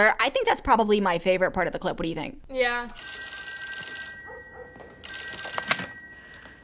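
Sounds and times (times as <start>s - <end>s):
speech: 0.0s - 3.2s
telephone bell ringing with a bright metallic trill: 3.0s - 6.6s.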